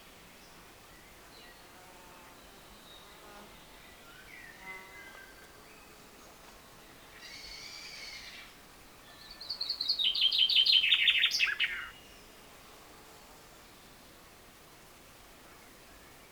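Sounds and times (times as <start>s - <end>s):
common chaffinch Fringilla coelebs singing: 2.4s - 12.3s.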